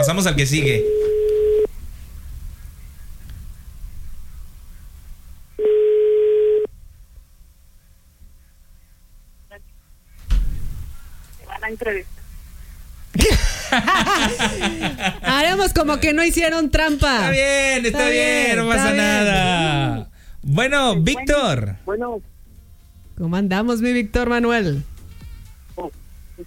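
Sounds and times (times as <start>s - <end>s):
speech: 0.1s - 1.0s, 11.8s - 12.1s, 15.5s - 22.3s, 23.2s - 24.9s, 25.8s - 26.4s
telephone line tones while a call is dialed: 0.6s - 1.7s, 5.6s - 6.7s
laughter: 13.2s - 16.1s.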